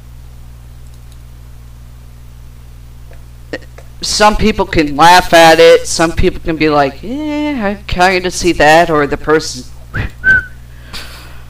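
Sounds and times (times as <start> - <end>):
speech: 3.5 - 10.2
person whistling a single short steady note: 9.9 - 10.6.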